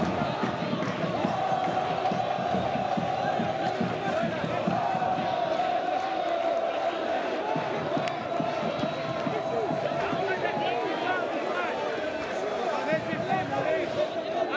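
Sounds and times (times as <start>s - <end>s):
football stadium crowd roaring and chanting celebrating a win: 0.0s - 14.5s.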